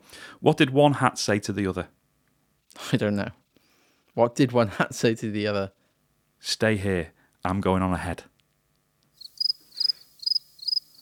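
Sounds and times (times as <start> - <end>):
faint low hum: 0.1 - 11.0
speech: 0.3 - 2.0, 2.9 - 3.4, 4.2 - 5.8, 6.4 - 8.3
crickets chirping: 9.2 - 11.0.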